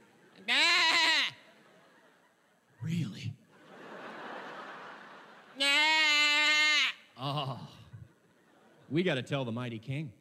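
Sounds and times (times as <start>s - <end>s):
sheep bleating: 0.5s - 1.4s, 5.6s - 7.2s
laughter: 1.3s - 5.8s, 7.2s - 9.0s
speech: 8.9s - 10.1s.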